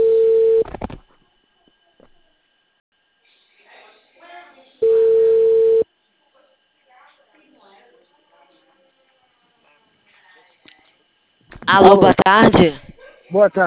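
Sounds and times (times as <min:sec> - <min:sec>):
ringback tone of an outgoing telephone call: 0:00.0 - 0:00.7, 0:04.8 - 0:05.8
speech: 0:11.7 - 0:13.6.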